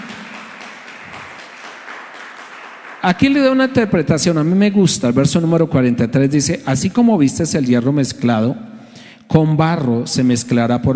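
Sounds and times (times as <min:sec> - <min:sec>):
crowd applause: 0:00.0 - 0:03.7
speech: 0:03.0 - 0:08.7, 0:09.3 - 0:10.9.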